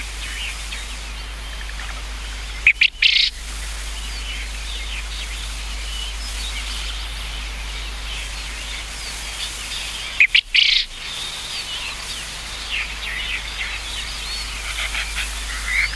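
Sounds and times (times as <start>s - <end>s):
birds chattering softly: 0.0s - 15.9s
Japanese quail rasping three-note call: 2.6s - 3.4s, 10.1s - 15.9s.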